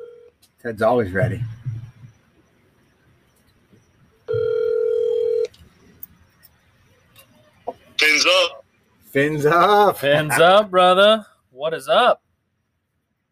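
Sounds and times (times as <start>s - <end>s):
electronic telephone ring tone: 0.0s - 0.3s, 4.3s - 5.5s
speech: 0.6s - 1.6s, 9.2s - 12.2s
warbling chirp from a telephone line: 4.3s - 5.5s.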